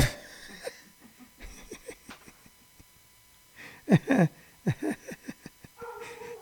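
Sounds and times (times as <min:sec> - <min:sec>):
faint chuckling: 0:00.0 - 0:02.9, 0:03.6 - 0:06.3
dog barking at a delivery truck: 0:05.8 - 0:06.3.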